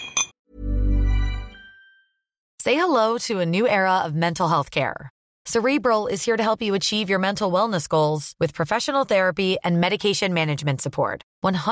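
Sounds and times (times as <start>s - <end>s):
glasses clinking in a toast: 0.0s - 0.3s
resonant ringing tone: 1.0s - 2.2s
speech: 2.6s - 11.7s.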